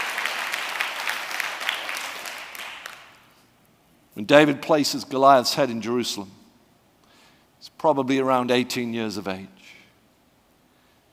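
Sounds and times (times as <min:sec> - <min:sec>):
room full of people applauding: 0:00.0 - 0:03.4
speech: 0:04.2 - 0:06.4, 0:07.8 - 0:09.6.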